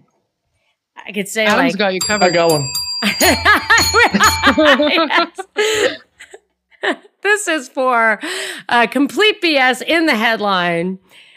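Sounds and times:
speech: 1.1 - 6.1, 6.8 - 11.2
small bell ringing with a bright sustained tone: 1.5 - 5.2
laughter: 3.0 - 7.0.

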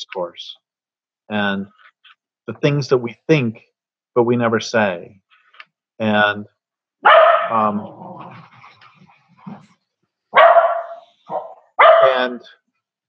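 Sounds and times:
speech: 0.0 - 0.6, 1.3 - 1.9, 2.5 - 5.2, 6.0 - 8.5, 12.1 - 12.6
dogs barking: 7.0 - 8.4, 10.3 - 12.5.

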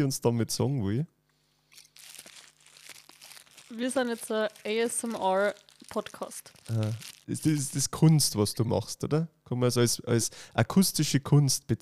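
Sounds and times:
speech: 0.0 - 1.2, 3.7 - 11.7
plastic tissue pack crinkling: 1.7 - 8.2.

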